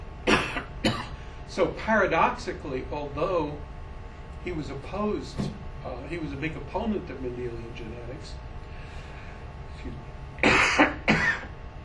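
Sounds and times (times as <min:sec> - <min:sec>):
person coughing from a dry throat: 0:00.3 - 0:01.2, 0:10.4 - 0:11.8
speech: 0:01.6 - 0:03.7, 0:04.4 - 0:08.5, 0:09.8 - 0:10.1.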